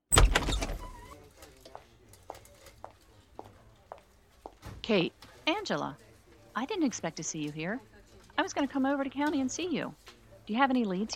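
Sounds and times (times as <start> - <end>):
door opening with a loud clunk and rattle: 0.1 - 1.2
speech: 4.9 - 6.0, 6.6 - 11.1.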